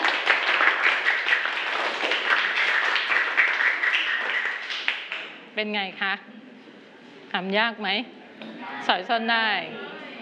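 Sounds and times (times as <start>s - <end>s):
students clapping in a classroom: 0.0s - 5.4s
speech: 5.6s - 6.4s, 7.3s - 9.8s.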